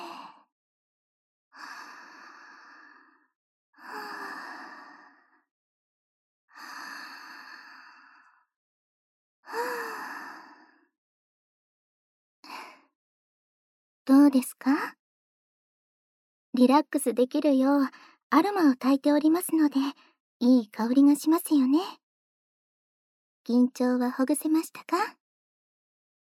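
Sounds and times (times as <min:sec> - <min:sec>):
slow deep breathing in and out during a guided relaxation exercise: 0:01.6 - 0:05.5, 0:06.5 - 0:08.5
speech: 0:14.3 - 0:15.0, 0:16.6 - 0:22.0, 0:23.4 - 0:25.2.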